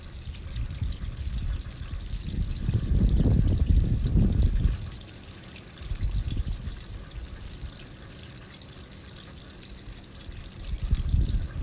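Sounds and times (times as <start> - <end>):
rain: 0.0 - 11.6
running water with low rumbling surges: 0.0 - 11.6.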